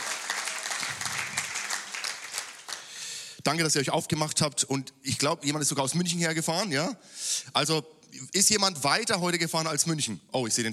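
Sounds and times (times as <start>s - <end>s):
crowd at a baptism service applauding: 0.0s - 3.0s
speech: 3.4s - 10.7s.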